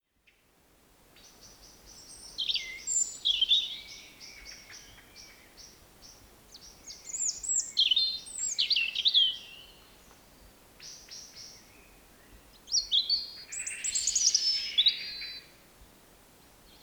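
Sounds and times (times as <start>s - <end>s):
European robin Erithacus rubecula song: 1.2s - 9.9s, 10.8s - 15.6s.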